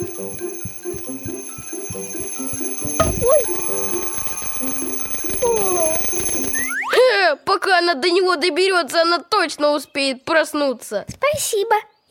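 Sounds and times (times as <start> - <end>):
bouncy whistling: 0.0 - 6.8
alarm clock ringing with a fast rattling bell: 0.0 - 6.9
sudden clang: 2.8 - 4.8
speech: 7.8 - 12.0.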